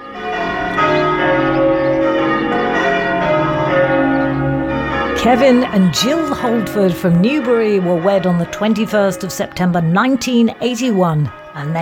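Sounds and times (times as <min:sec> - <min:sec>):
wedding church bells pealing: 0:00.0 - 0:11.8
speech: 0:05.2 - 0:11.8.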